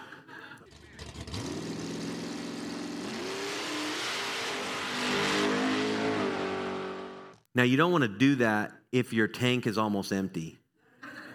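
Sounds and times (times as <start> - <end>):
race car engines revving as cars accelerate off the starting line: 0.7 - 7.4
speech: 7.6 - 10.6.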